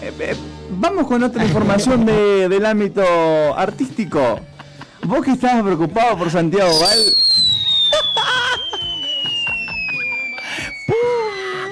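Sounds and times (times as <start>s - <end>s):
speech: 0.0s - 7.2s
falling bomb whistle: 6.7s - 11.7s.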